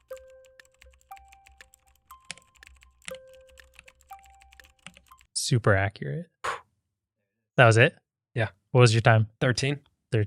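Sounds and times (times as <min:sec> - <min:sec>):
typing on a mechanical keyboard: 0:00.0 - 0:05.3
speech: 0:05.5 - 0:06.3, 0:07.6 - 0:10.2.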